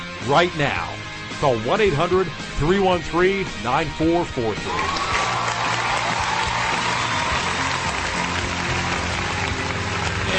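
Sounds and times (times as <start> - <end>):
speech: 0.2 - 5.2
crowd applauding: 4.7 - 10.3.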